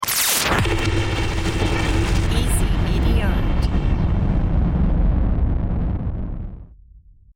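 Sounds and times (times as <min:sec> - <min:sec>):
nitric blast: 0:00.1 - 0:07.3.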